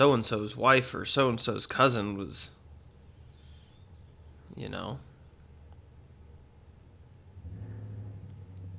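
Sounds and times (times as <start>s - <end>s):
speech: 0.0s - 2.6s, 4.5s - 5.1s
rumble of traffic outside: 5.8s - 8.7s
car engine droning: 7.4s - 8.7s.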